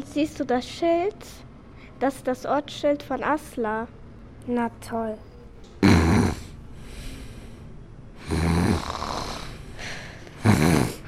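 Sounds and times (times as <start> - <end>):
speech: 0.1 - 5.3
loud rumbling snoring: 5.8 - 7.2, 8.2 - 9.6, 10.4 - 11.0.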